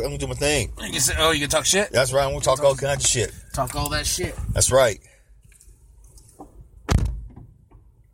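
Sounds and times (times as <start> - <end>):
speech: 0.0 - 5.1
solid door thunk: 6.9 - 7.5.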